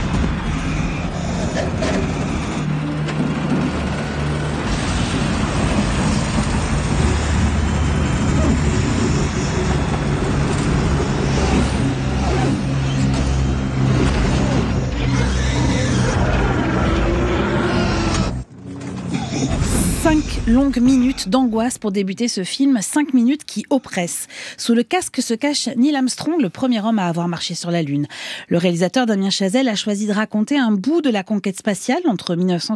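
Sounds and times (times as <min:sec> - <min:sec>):
rumbling noise inside a shaking aircraft cockpit in a film: 0:00.0 - 0:21.8
speech: 0:20.5 - 0:32.7.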